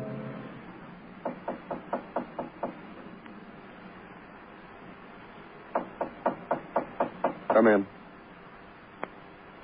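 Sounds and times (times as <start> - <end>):
sharp knocking on a door: 1.2 - 2.9, 5.7 - 7.7.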